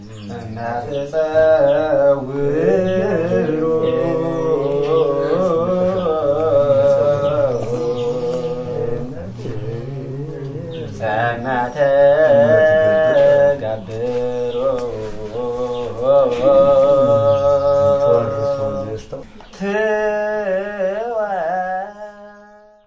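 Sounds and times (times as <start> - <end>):
male Christian monk chanting: 0.0 - 22.8.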